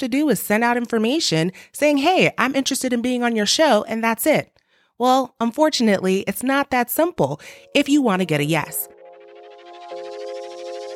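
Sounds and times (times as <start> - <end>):
speech: 0.0 - 8.9
electronic echo sound effect with ringing drone and shimmering pulses: 7.6 - 10.9.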